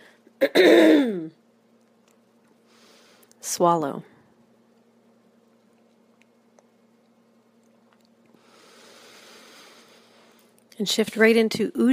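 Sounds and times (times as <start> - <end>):
faint low hum: 0.0 - 11.9
speech: 0.4 - 1.4, 3.6 - 4.1, 10.8 - 11.9
throat clearing with a gravelly rasp: 0.4 - 1.4.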